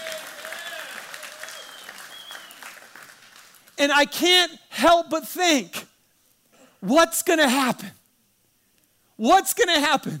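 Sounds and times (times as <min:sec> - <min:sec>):
people cheering: 0:00.0 - 0:03.1
room full of people applauding: 0:00.0 - 0:03.8
speech: 0:03.8 - 0:05.8, 0:06.8 - 0:08.0, 0:09.2 - 0:10.1.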